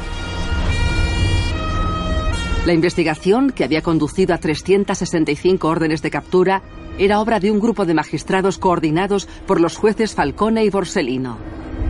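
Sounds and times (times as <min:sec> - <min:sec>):
police car sirens wailing through city streets in Palermo: 0:00.0 - 0:05.1
low traffic rumble: 0:00.0 - 0:11.8
speech: 0:02.6 - 0:11.6.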